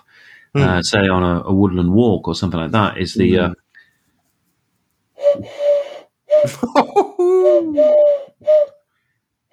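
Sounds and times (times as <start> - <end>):
speech: 0.5 - 3.6, 6.6 - 8.6
person imitating wood pigeon cooing with breathy hoots: 6.3 - 8.6
brief snort or laugh: 6.4 - 7.8.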